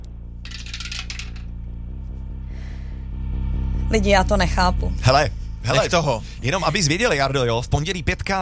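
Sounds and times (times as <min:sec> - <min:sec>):
steady low hum: 0:00.0 - 0:08.1
die clattering down through a dice tower: 0:00.5 - 0:01.6
speech: 0:03.9 - 0:08.3.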